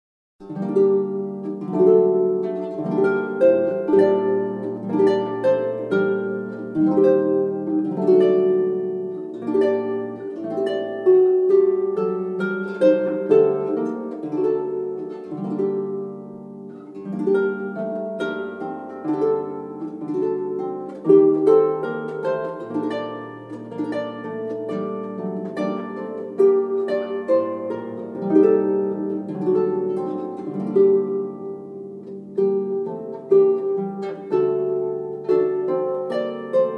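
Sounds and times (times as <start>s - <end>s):
Celtic harp: 0.4s - 36.7s.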